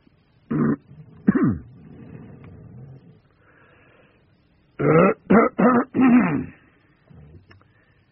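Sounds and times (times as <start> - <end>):
person giving loud coughs: 0.5 - 1.6, 4.8 - 6.6
person clearing throat: 0.5 - 1.8, 4.8 - 6.6.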